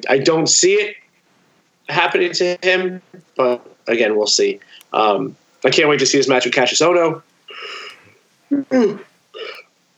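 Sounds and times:
speech: 0:00.1 - 0:01.0, 0:01.9 - 0:07.8, 0:08.5 - 0:09.1
person yawning: 0:07.5 - 0:09.6.

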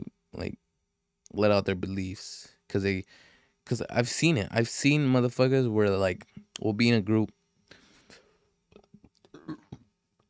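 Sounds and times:
speech: 0:00.4 - 0:00.6, 0:01.3 - 0:07.4
burp: 0:09.3 - 0:09.9.

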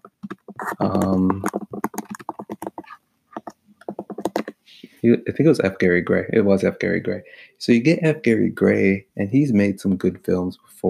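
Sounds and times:
computer keyboard keys clicking: 0:00.1 - 0:02.8
speech: 0:00.8 - 0:01.6, 0:05.0 - 0:10.8.

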